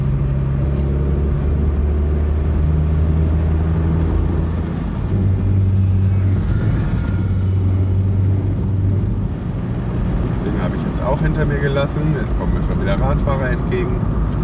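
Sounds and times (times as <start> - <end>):
road rumble: 0.0 - 14.4
50cc scooter engine droning while riding along the road: 4.9 - 8.8
speech: 11.4 - 14.4.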